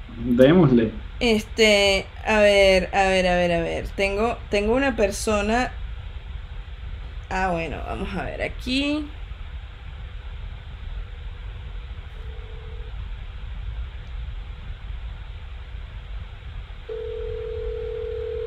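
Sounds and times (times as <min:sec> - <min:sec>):
hissy rumbling phone line noise: 0:00.0 - 0:18.4
speech: 0:00.2 - 0:05.8, 0:07.3 - 0:09.2
cell phone call ringing as two steady electronic tone bursts: 0:16.9 - 0:18.4.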